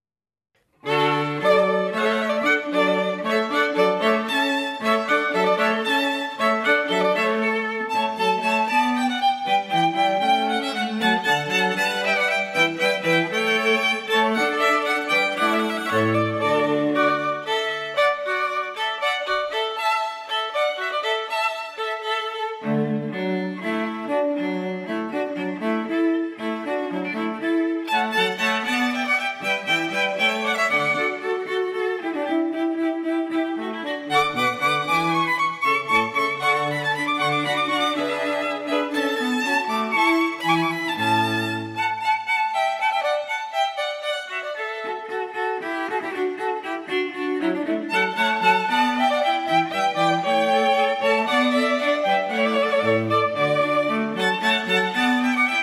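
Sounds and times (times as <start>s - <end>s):
string quartet playing: 0.7s - 55.6s.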